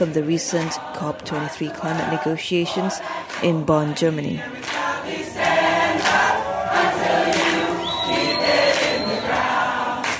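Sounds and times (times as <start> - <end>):
speech: 0.0 - 5.2
large crowd of protesters singing and chanting at climate negotiations in Bonn: 0.0 - 10.1
thin whistle-like tone: 7.4 - 9.6.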